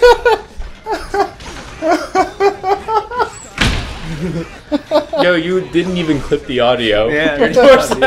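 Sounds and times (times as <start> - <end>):
several people laughing: 0.0 - 8.0
loud door slam: 3.5 - 4.2
speech: 4.3 - 8.0.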